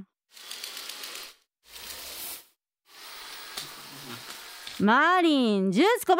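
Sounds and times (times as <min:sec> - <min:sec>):
robot vacuum grinding and whirring as it climbs onto a manga book: 0:00.3 - 0:05.0
speech: 0:04.8 - 0:06.1.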